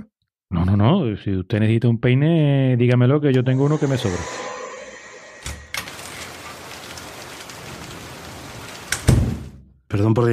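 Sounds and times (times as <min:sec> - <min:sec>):
speech: 0:00.6 - 0:04.6, 0:09.9 - 0:10.3
heavy rain: 0:05.9 - 0:09.1.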